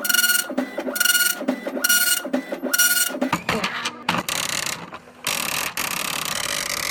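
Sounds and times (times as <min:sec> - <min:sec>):
impact printer printing by striking an inky ribbon: 0:00.0 - 0:06.9.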